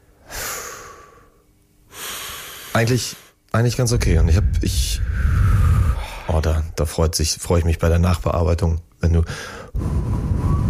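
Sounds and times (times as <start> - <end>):
deep breath in and out: 0.1 - 3.4, 4.5 - 6.4, 9.3 - 10.6
speech: 2.8 - 5.3, 6.3 - 10.1.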